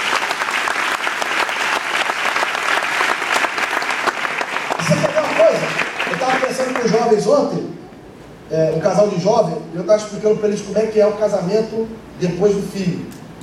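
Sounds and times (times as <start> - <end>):
church congregation clapping: 0.0 - 7.2
speech: 6.5 - 7.8, 8.5 - 13.2.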